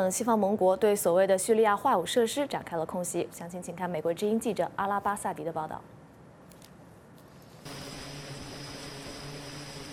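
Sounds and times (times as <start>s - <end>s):
speech: 0.0s - 6.0s
jet engine roar with a high-pitched whine: 7.7s - 9.9s.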